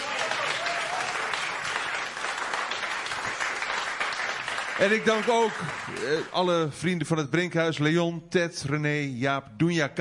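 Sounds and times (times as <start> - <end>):
audience applause for a jazz band: 0.0 - 6.5
speech: 4.8 - 9.9.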